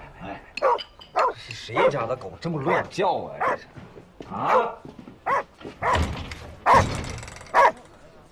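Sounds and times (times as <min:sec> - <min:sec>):
hungry dog barking: 0:00.6 - 0:02.0, 0:02.6 - 0:03.7, 0:04.4 - 0:07.0, 0:07.5 - 0:07.8
hungry dog whimpering yelps: 0:05.3 - 0:06.0.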